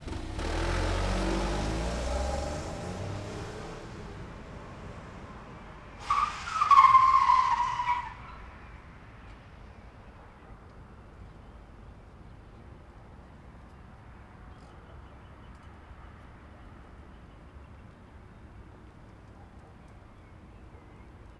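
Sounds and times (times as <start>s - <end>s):
car braking with screeching tyres: 0.0s - 8.6s.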